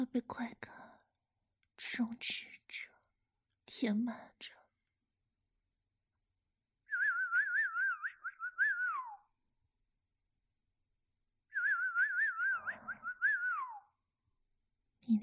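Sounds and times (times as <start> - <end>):
speech: 0.0 - 0.9, 1.8 - 2.9, 3.7 - 4.6, 15.1 - 15.2
person whistling by mouth: 6.9 - 9.3, 11.5 - 13.9.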